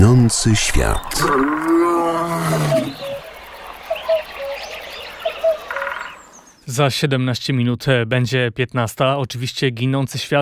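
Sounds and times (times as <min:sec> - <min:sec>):
speech: 0:00.0 - 0:01.7, 0:06.7 - 0:10.4
scattered bird chirps: 0:00.0 - 0:06.8
lion roaring: 0:00.6 - 0:03.2.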